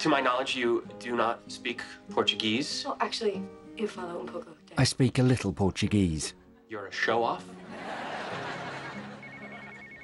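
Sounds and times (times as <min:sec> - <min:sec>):
speech: 0:00.0 - 0:07.6
noise: 0:00.0 - 0:10.0
laughter: 0:07.4 - 0:10.0
telephone ringing with a repeating electronic trill: 0:08.4 - 0:10.0.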